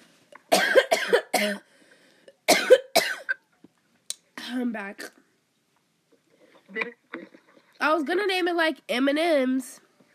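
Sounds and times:
person coughing: 0.5s - 1.7s, 2.5s - 3.4s
speech: 1.4s - 1.7s, 4.5s - 5.2s, 6.7s - 9.8s.

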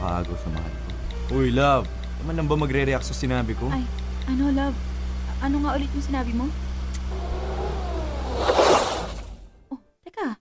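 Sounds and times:
speech: 0.3s - 6.6s
car engine revving: 6.6s - 9.6s.

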